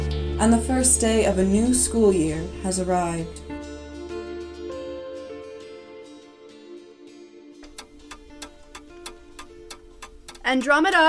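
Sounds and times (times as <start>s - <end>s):
soft sustained musical drone: 0.0s - 11.0s
speech: 0.4s - 3.5s, 10.5s - 11.0s
clock ticking: 7.6s - 11.0s.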